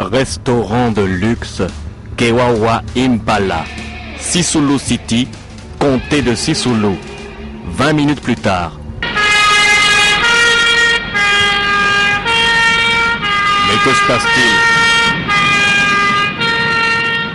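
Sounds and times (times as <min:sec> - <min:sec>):
speech: 0:00.1 - 0:08.8, 0:13.7 - 0:14.7
ambulance siren wailing in a two-tone pattern: 0:03.5 - 0:17.3.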